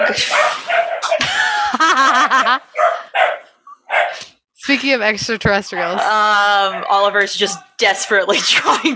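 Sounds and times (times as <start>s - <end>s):
several dogs barking and yipping excitedly while playing: 0.0s - 1.2s, 2.6s - 4.2s, 6.6s - 8.2s
speech: 0.1s - 0.4s, 2.1s - 3.0s, 4.7s - 8.9s
laughter: 1.0s - 3.2s.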